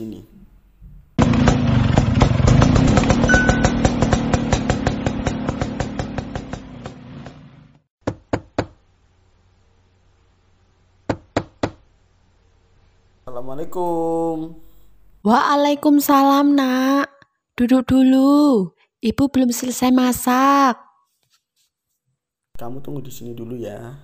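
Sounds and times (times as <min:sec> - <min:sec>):
motorcycle fetched from a parking lot engine throbbing: 0:01.2 - 0:07.8
sharp knocks: 0:01.2 - 0:08.8, 0:11.1 - 0:11.8
speech: 0:13.6 - 0:20.8, 0:22.6 - 0:24.0.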